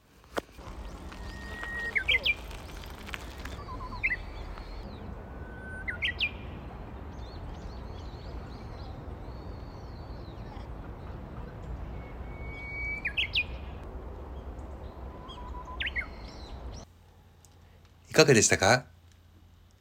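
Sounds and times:
outdoor hiss: 0.0 - 19.8
Japanese bush warbler singing: 0.5 - 16.9
speech: 18.2 - 18.9.

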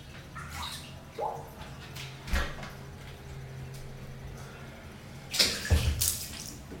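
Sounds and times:
soft water splashes and trickles in a home bathroom while someone bathes: 0.0 - 2.6, 5.2 - 6.7.

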